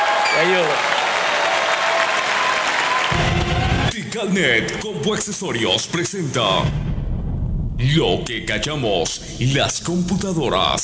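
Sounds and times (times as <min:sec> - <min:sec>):
audience applause for a performer: 0:00.0 - 0:03.9
speech: 0:00.4 - 0:00.9, 0:04.2 - 0:06.9, 0:07.8 - 0:10.8.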